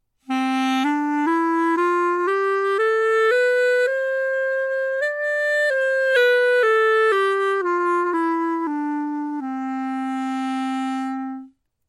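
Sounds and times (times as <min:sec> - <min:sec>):
chalumeau playing a scale: 0:00.3 - 0:11.6.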